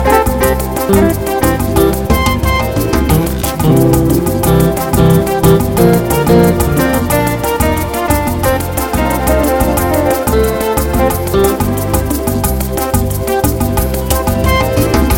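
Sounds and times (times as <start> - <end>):
fast beat groove: 0.0 - 15.1.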